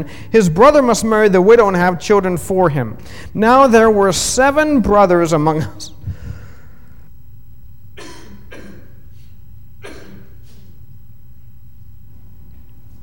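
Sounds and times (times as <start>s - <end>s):
speech: 0.0s - 6.0s
person coughing: 8.0s - 10.8s.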